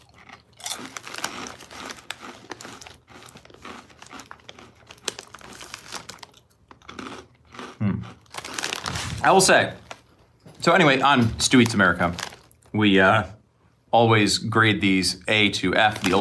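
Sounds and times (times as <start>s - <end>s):
crunching of cinnamon corn snack chips being chewed: 0.0s - 10.1s, 11.0s - 12.8s, 15.8s - 16.1s
snack bag crinkling: 0.0s - 10.1s, 10.8s - 12.7s, 15.8s - 16.1s
speech: 9.2s - 9.8s, 10.6s - 16.1s.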